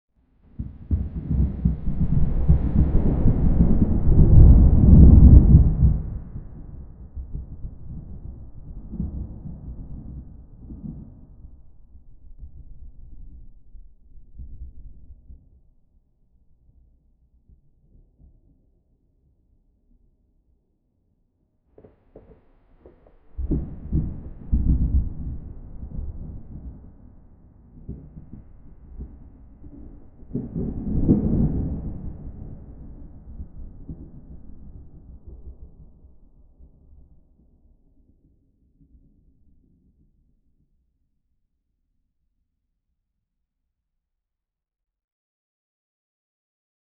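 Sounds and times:
thunder: 0.5s - 15.4s, 21.8s - 37.5s.

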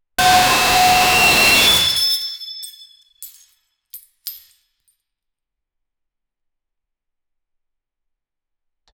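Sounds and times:
sharp piercing scream: 0.2s - 2.9s.

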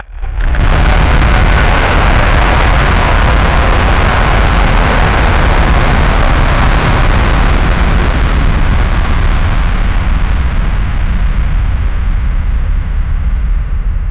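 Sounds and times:
massive monster roar: 0.0s - 7.6s
bass hit: 0.0s - 14.0s.

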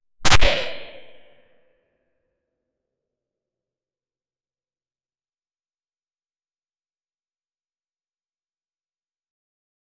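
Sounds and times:
cute zombie getting hit by 50 caliber gunfire: 0.2s - 1.2s.

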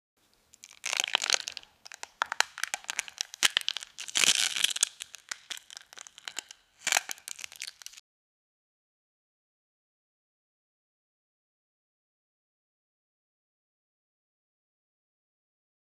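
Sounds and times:
rock candy smashing: 0.6s - 8.0s.

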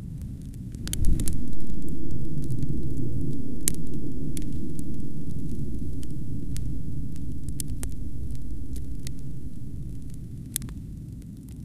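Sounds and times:
ethereal soft rain or ember texture: 0.2s - 11.5s.

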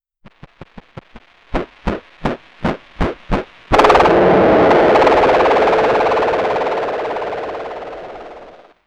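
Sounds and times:
timeline arrow zoom whoosh: 3.7s - 8.7s.

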